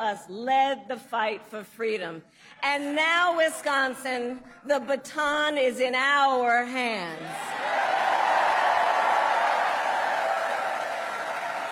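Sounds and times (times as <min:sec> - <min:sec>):
speech: 0:00.0 - 0:07.9
large crowd roaring and cheering at campaign rally: 0:07.2 - 0:11.7.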